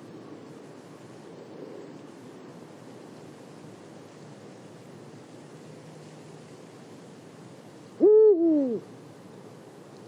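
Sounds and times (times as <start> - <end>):
faint hiss: 0.0 - 10.0
Eurasian eagle-owl hooting at Marianka, Slovakia: 8.0 - 8.9.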